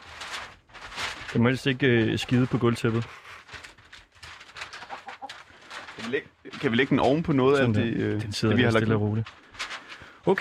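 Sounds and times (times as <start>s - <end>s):
rustling and shuffling movement: 0.0s - 10.3s
speech: 1.3s - 3.2s, 6.1s - 9.4s
large hen clucking: 4.8s - 5.4s.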